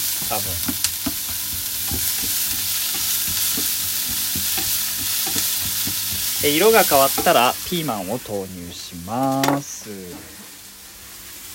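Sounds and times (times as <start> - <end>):
scraping and tapping while stirring onions in a pan: 0.0 - 7.5
onions sizzling while stir-fried in a hot pan: 0.0 - 11.5
speech: 0.3 - 0.9, 6.4 - 10.4.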